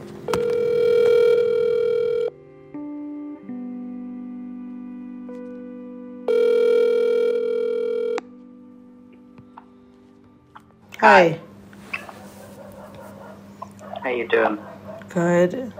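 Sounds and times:
electronic telephone ringback tones: 0.3s - 2.4s, 6.3s - 8.3s
speech: 11.0s - 11.4s, 14.2s - 15.7s.

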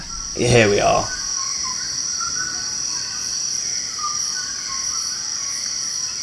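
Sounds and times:
dawn chorus of many birds in a forest: 0.0s - 6.2s
speech: 0.4s - 1.2s.

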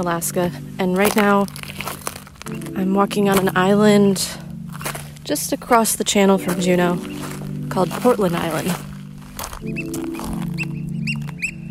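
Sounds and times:
speech: 0.0s - 4.4s, 5.3s - 8.9s, 9.6s - 10.4s
oystercatchers calling: 6.4s - 11.6s.

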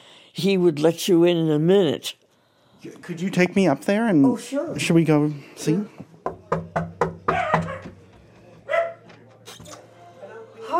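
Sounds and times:
speech: 0.4s - 2.2s, 2.8s - 6.9s
small dog barking in an apartment: 7.3s - 8.0s, 8.7s - 9.1s.

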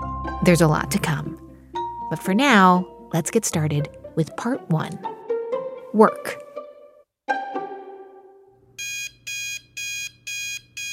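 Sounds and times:
speech: 0.4s - 1.4s, 2.1s - 5.1s, 5.9s - 6.4s
alarm clock ringing with electronic beeps: 8.8s - 10.9s.

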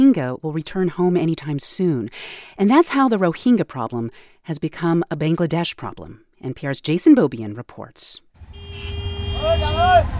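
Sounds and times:
speech: 0.1s - 10.1s
car horns honking in a beach traffic jam: 8.4s - 10.1s.

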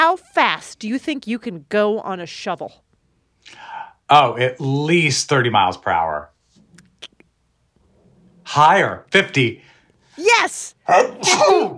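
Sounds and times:
speech: 0.1s - 2.8s, 3.4s - 6.3s, 8.5s - 11.7s
young voice speaking: 10.2s - 10.7s
person sneezing: 11.1s - 11.7s.

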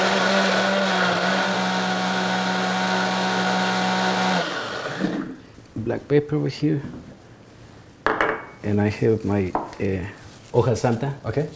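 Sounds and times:
kitchen blender whirring: 0.0s - 5.4s
speech: 5.9s - 7.0s, 8.6s - 11.5s.

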